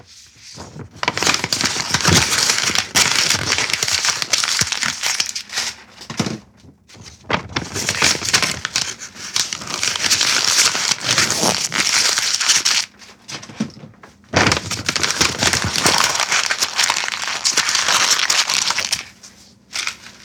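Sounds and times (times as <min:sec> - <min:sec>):
sheets of paper being crushed and crumpled: 0:00.2 - 0:06.0, 0:06.9 - 0:12.9, 0:14.4 - 0:20.2.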